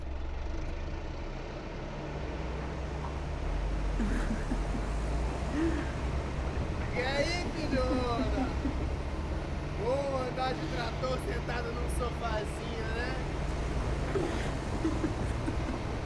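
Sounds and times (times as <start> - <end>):
tractor engine droning: 0.0 - 16.0
speech: 4.0 - 4.5, 10.4 - 12.8
laughter: 4.0 - 6.0, 7.0 - 9.2, 14.1 - 16.0.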